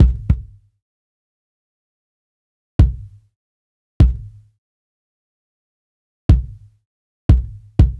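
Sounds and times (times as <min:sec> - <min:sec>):
jazz kick drum: 0:00.0 - 0:00.6, 0:02.8 - 0:03.2, 0:04.0 - 0:04.5, 0:06.3 - 0:07.9.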